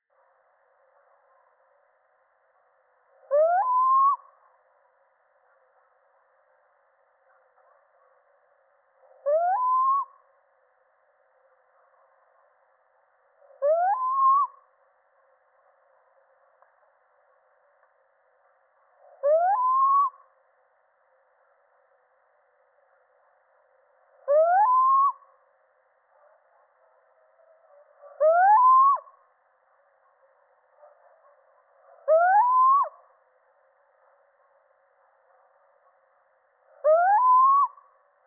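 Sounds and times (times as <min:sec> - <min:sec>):
male little owl calling: 0:03.3 - 0:04.4, 0:09.2 - 0:10.2, 0:13.6 - 0:14.7, 0:19.2 - 0:20.2, 0:24.3 - 0:25.3, 0:28.1 - 0:29.2, 0:32.0 - 0:33.0, 0:36.7 - 0:37.8.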